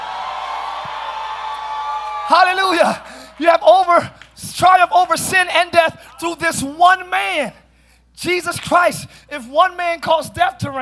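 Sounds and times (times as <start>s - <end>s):
audience screaming and cheering: 0.0s - 4.3s
speech: 2.3s - 7.6s, 8.2s - 10.8s.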